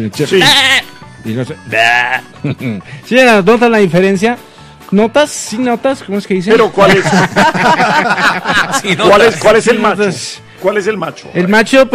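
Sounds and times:
speech: 0:00.0 - 0:11.9
person imitating a goat bleating: 0:00.3 - 0:00.9, 0:01.6 - 0:02.4
laughter: 0:02.4 - 0:02.8, 0:06.8 - 0:09.8.

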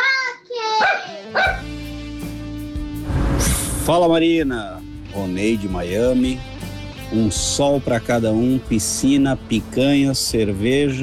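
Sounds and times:
pet dog barking in high-pitched yelps: 0:00.8 - 0:01.7
steady low hum: 0:03.0 - 0:04.2
speech: 0:03.9 - 0:06.5, 0:07.1 - 0:11.0.

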